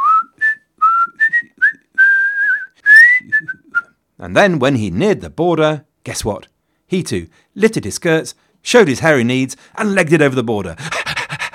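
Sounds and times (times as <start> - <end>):
person whistling a casual carefree tune: 0.0 - 4.0
speech: 4.2 - 11.2.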